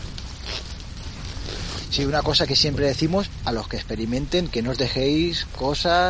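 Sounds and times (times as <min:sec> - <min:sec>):
zipper on a small belt pouch rasping: 0:00.3 - 0:01.9
speech: 0:01.9 - 0:06.0.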